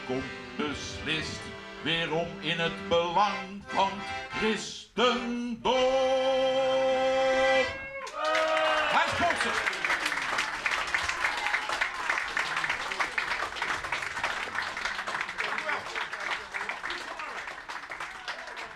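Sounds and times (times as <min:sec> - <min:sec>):
speech: 0:00.1 - 0:06.7
audience applauding after a live performance: 0:08.0 - 0:18.7.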